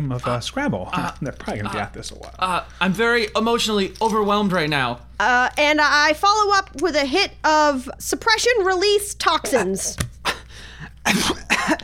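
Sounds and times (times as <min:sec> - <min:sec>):
speech: 0:00.0 - 0:10.1, 0:11.1 - 0:11.8
harsh coughs: 0:09.4 - 0:10.0, 0:11.0 - 0:11.8
raspy breath or throat sound: 0:10.4 - 0:11.0.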